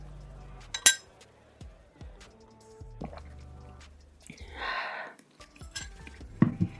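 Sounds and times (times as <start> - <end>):
wine glasses clinking in a toast: 0.7 - 1.0
dishes and cutlery clattering: 0.7 - 1.1, 5.5 - 6.7.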